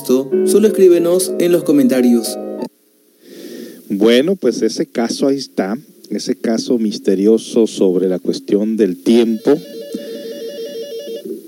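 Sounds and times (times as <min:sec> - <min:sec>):
speech: 0:00.1 - 0:02.5, 0:03.9 - 0:09.8
studio telephone ringing with an electronic trill: 0:09.2 - 0:11.3.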